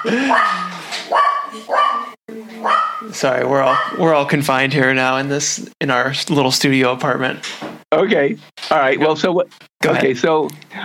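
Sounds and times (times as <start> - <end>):
speech: 0.0 - 2.0, 3.2 - 10.8
dog barking: 0.0 - 3.1, 3.7 - 4.0
short dog yelp: 0.2 - 3.1.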